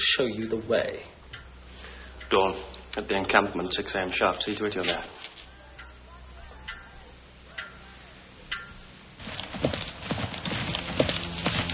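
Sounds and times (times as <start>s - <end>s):
speech: 0.2s - 1.2s, 2.3s - 5.2s
white horse hooves clip-clopping into a courtyard: 8.7s - 11.7s.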